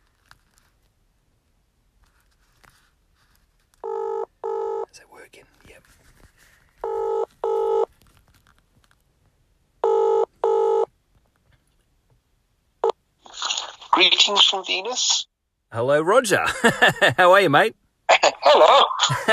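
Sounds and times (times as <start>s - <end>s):
faint rustling: 0.0s - 3.9s, 5.4s - 9.5s
messaging app call ringing tone: 3.8s - 4.9s, 6.8s - 7.9s, 9.8s - 10.9s
speech: 14.0s - 17.8s, 18.5s - 19.3s
laughter: 16.4s - 17.2s, 18.6s - 19.3s.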